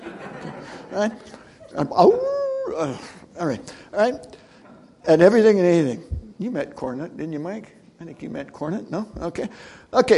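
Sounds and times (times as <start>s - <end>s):
laughter: 0.0s - 2.8s
speech: 1.0s - 4.4s, 5.0s - 10.1s
person imitating a howling beagle: 2.0s - 3.0s.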